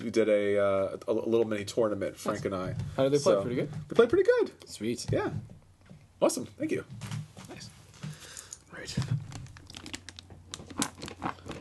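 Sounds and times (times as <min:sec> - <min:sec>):
speech: 0:00.0 - 0:05.6, 0:06.2 - 0:07.7, 0:08.8 - 0:09.3
red shiny gift wrapping paper crinkling and ripping: 0:08.8 - 0:11.5.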